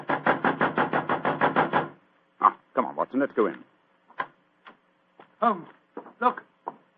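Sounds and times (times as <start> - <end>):
knocking on a wooden dressing room door: 0.0 - 2.0
speech: 3.1 - 3.7, 5.4 - 6.4.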